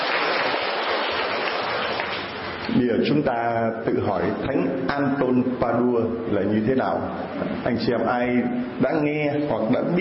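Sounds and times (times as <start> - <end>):
church congregation applauding: 0.0 - 2.6
speech: 2.8 - 9.9.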